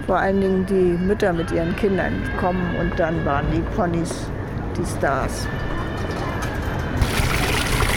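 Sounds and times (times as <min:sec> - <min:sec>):
speech: 0:00.1 - 0:05.8
water filling a bucket for ponies: 0:07.0 - 0:07.9.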